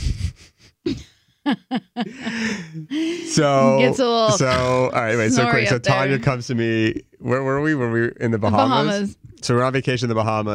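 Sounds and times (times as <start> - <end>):
heavy wheezy breathing through the nose of a person with a deviated septum: 0.0 - 1.3, 2.1 - 3.5
speech: 0.9 - 10.5
laughter: 1.5 - 6.4, 8.5 - 9.0.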